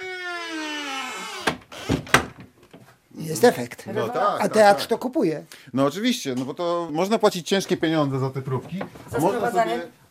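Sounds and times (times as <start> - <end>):
door creak sound effect: 0.0 - 2.6
speech: 3.3 - 10.0.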